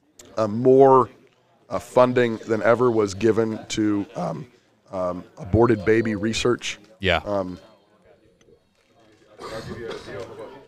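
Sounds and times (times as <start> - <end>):
speech: 0.4 - 7.7
cough or throat-clearing: 9.3 - 10.6.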